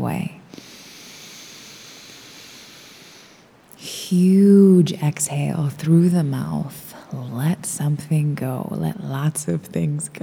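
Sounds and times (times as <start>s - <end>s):
deep breath drawn in through the nose during guided relaxation practice: 0.5s - 3.6s
speech: 4.1s - 10.2s.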